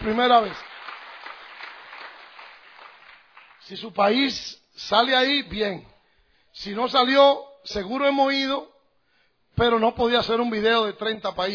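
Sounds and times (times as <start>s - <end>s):
speech: 0.0s - 0.6s, 3.7s - 5.9s, 6.6s - 8.7s, 9.6s - 11.5s
audience applause at a gathering in Canada: 0.0s - 3.7s.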